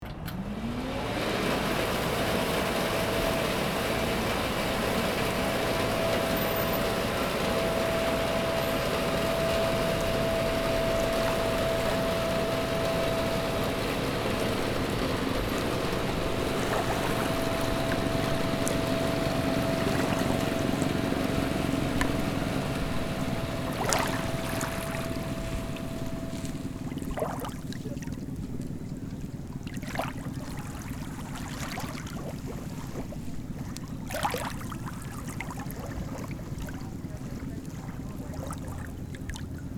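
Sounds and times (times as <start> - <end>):
boat leaving the port outdoors: 0.0 - 39.7.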